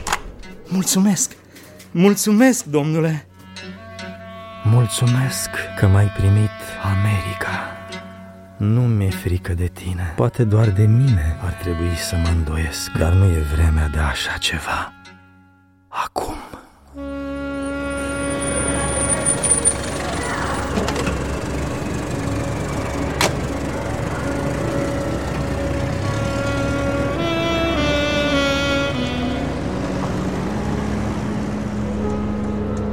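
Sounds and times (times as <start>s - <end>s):
speech: 0.7s - 3.3s, 4.7s - 7.8s, 8.6s - 15.0s
heavy car traffic in an American city: 17.5s - 32.9s.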